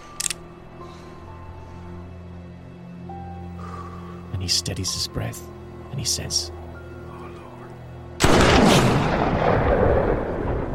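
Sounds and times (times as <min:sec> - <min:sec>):
speech: 0:04.4 - 0:06.6
gunshot with rumbling tail: 0:08.2 - 0:10.7.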